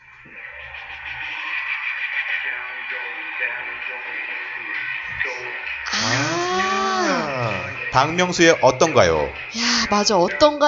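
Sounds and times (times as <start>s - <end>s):
K-pop song with dense vocals and radio-like tone: 2.4s - 8.4s, 9.0s - 10.6s
speech: 3.4s - 5.8s, 7.9s - 10.6s.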